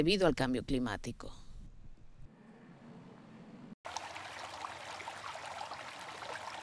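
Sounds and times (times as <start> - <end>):
speech: 0.0 - 1.4
water flowing and trickling: 3.8 - 6.6.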